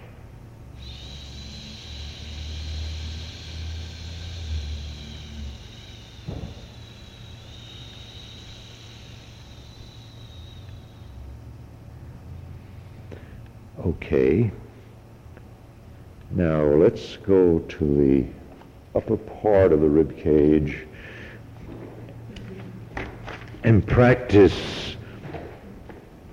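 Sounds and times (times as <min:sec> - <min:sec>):
low hum: 0:00.0 - 0:26.3
hissing exhale through teeth: 0:00.8 - 0:11.1
speech: 0:13.9 - 0:14.6, 0:16.4 - 0:18.4, 0:19.0 - 0:20.9, 0:23.7 - 0:24.8.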